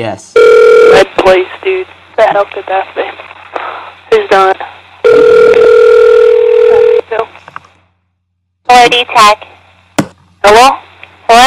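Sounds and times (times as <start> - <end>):
speech: 0.0 - 3.2, 4.2 - 5.6, 8.8 - 9.5, 10.4 - 11.4
steady telephone tone: 0.4 - 1.1, 5.0 - 7.1.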